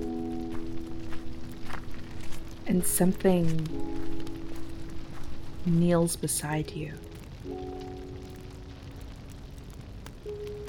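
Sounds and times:
soft footsteps approaching: 0:00.0 - 0:06.2
speech: 0:02.7 - 0:04.0, 0:05.6 - 0:07.6.

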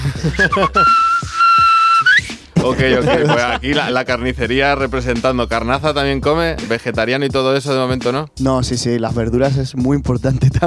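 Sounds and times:
speech: 0:00.0 - 0:01.1, 0:02.6 - 0:10.6
laughter: 0:00.0 - 0:01.2, 0:02.6 - 0:04.0
loud high whistle: 0:00.4 - 0:02.4.

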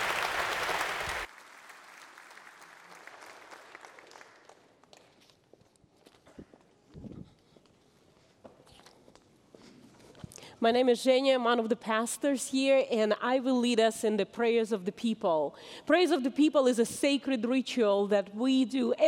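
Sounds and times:
audience applauding: 0:00.0 - 0:04.8
scattered footsteps in a large room: 0:04.8 - 0:10.4
speech: 0:10.6 - 0:19.0.

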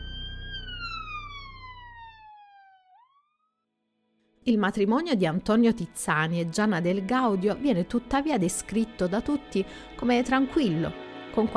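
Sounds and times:
ambulance siren wailing as it passes: 0:00.0 - 0:03.2
speech: 0:04.4 - 0:11.5.

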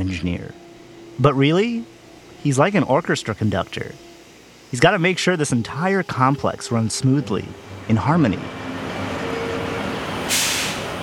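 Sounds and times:
speech: 0:00.0 - 0:00.6, 0:01.2 - 0:04.1, 0:04.7 - 0:08.6
air brakes of garbage trucks hissing: 0:09.4 - 0:11.0.

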